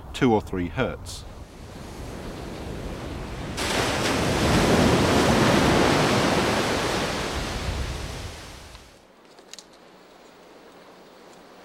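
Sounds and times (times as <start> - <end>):
speech: 0.2 - 1.3
water waves washing past: 1.2 - 9.0.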